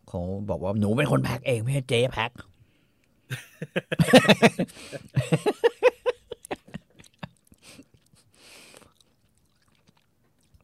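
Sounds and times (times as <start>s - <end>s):
speech: 0.1s - 2.5s, 3.3s - 5.8s
laughter: 3.3s - 7.3s
crispy fried squid snack being chewed: 6.5s - 10.6s.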